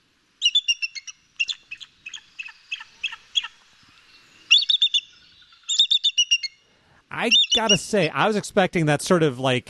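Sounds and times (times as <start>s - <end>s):
bald eagle chattering call with high piping chirps: 0.4s - 3.6s, 4.5s - 8.1s
speech: 7.2s - 9.6s.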